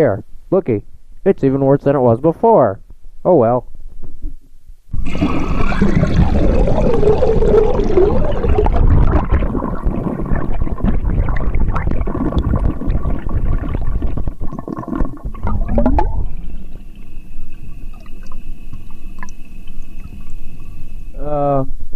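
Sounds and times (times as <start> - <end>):
speech: 0.0 - 3.7, 5.0 - 6.2
faint steady whine: 0.0 - 21.9
toilet flushing recorded from inside the bowl: 5.0 - 20.6.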